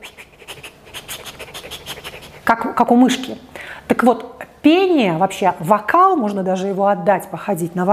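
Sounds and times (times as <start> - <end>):
person demonstrating shallow quick breathing of a frightened child: 0.0 - 2.5, 3.5 - 3.9
speech: 2.5 - 7.9.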